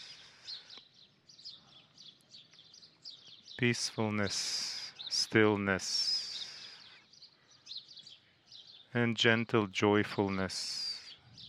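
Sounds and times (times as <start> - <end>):
birds chirping: 0.0 - 11.4
speech: 3.6 - 4.7, 5.3 - 6.1, 9.0 - 10.8.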